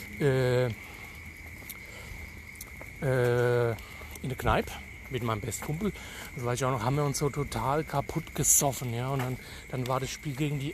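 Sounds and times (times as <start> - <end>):
rain falling: 0.0 - 10.7
speech: 0.2 - 0.9, 3.0 - 10.7.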